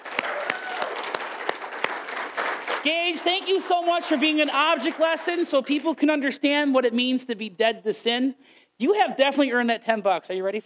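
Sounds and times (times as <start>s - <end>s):
crowd clapping: 0.0s - 5.9s
speech: 2.8s - 10.6s.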